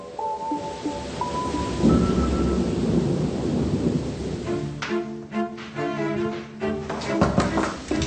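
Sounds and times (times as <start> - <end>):
rain-like hiss: 0.0 - 6.8, 7.6 - 8.0
tonal musical sounds: 0.0 - 7.2
rolling thunder: 0.6 - 4.8.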